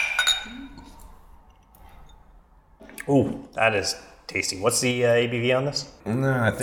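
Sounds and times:
beer glasses clinking in a toast: 0:00.0 - 0:01.0
speech: 0:03.1 - 0:06.6.

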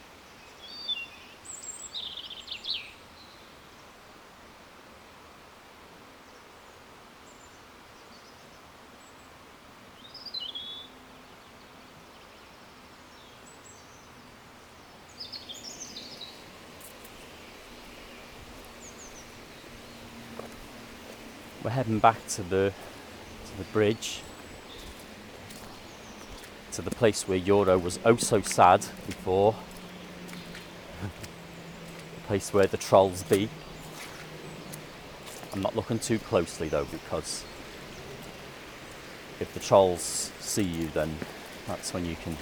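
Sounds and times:
birds chirping and singing outdoors: 0:15.2 - 0:42.3
speech: 0:21.6 - 0:22.9, 0:23.6 - 0:24.3, 0:26.8 - 0:29.7, 0:32.3 - 0:33.6, 0:35.6 - 0:37.5, 0:39.4 - 0:42.3.

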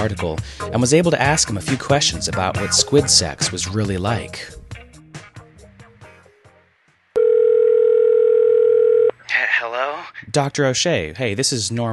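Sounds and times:
speech: 0:00.0 - 0:04.6, 0:10.2 - 0:11.9
phone dialing tones: 0:07.2 - 0:09.1.

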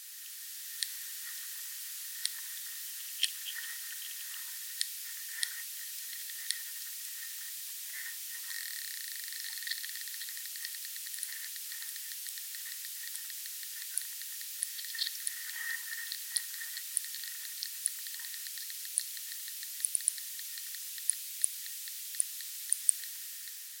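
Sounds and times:
steady thin high-pitched buzzing hiss in a field tank: 0:00.0 - 0:23.7
underwater ticks and clicks of lesser diving beetle Acillus sulcatus: 0:08.5 - 0:23.6.

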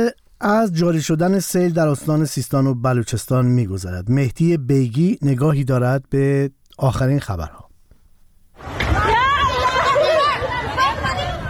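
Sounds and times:
speech: 0:00.0 - 0:07.6
crowd of flood-stricken villagers crying out in panic in Dashtiari, Sistan and Baluchestan: 0:08.7 - 0:11.4.

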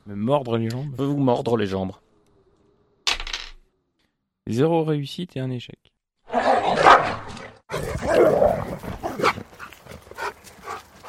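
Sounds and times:
speech: 0:00.1 - 0:02.0, 0:04.5 - 0:05.9
agitated dog barking, snarling and yipping: 0:06.3 - 0:11.0.

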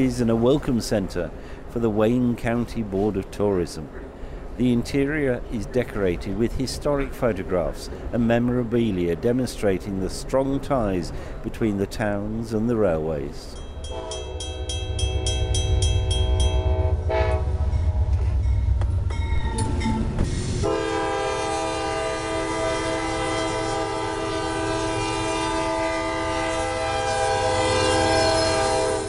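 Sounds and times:
speech: 0:00.0 - 0:14.2
passenger train rattling and rumbling along tracks: 0:00.0 - 0:29.0
passenger train horn sounding in long sustained blasts: 0:13.8 - 0:18.4, 0:20.6 - 0:29.0.

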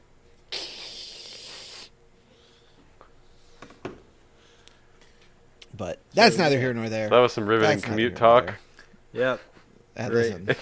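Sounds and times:
aerosol disinfectant spray hissing: 0:00.5 - 0:01.9
speech: 0:05.8 - 0:08.6, 0:09.2 - 0:10.6.

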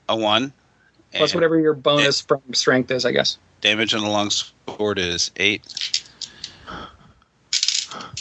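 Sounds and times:
speech: 0:00.1 - 0:06.0
six-sided dice clattering across a hard tabletop: 0:07.5 - 0:08.2.

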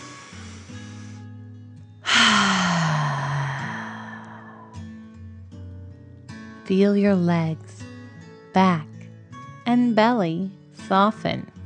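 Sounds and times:
deep breath in and out during a guided bedtime relaxation: 0:00.0 - 0:01.4, 0:02.0 - 0:05.0
speech: 0:06.7 - 0:07.8, 0:08.5 - 0:08.9, 0:09.7 - 0:11.5.

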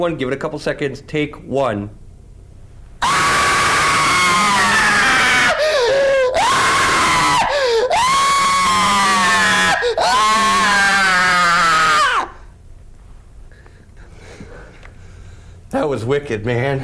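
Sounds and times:
speech: 0:00.0 - 0:02.0, 0:15.9 - 0:16.8
man screaming: 0:03.0 - 0:12.4.

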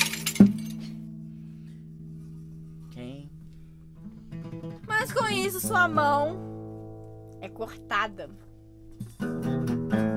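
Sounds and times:
mirror glass smashing: 0:00.0 - 0:01.0
speech: 0:05.0 - 0:06.5, 0:07.4 - 0:08.4.

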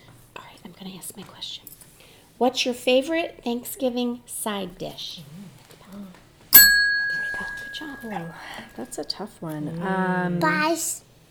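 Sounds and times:
faint murmuring: 0:00.0 - 0:11.2
speech: 0:00.8 - 0:01.7, 0:02.4 - 0:05.4, 0:08.0 - 0:11.0
bell struck: 0:06.6 - 0:09.0.

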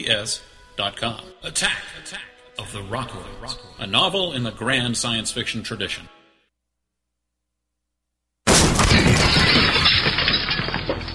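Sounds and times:
speech: 0:00.0 - 0:06.2
debris tinkling and scattering: 0:08.5 - 0:11.1
door kicked in with a loud crash: 0:08.5 - 0:11.1
glass shattering: 0:08.5 - 0:11.1.

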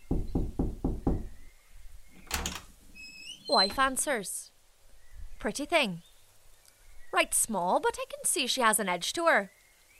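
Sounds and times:
knocking on a wooden door: 0:00.0 - 0:01.4
speech: 0:03.5 - 0:04.5, 0:05.4 - 0:06.1, 0:07.1 - 0:09.6.

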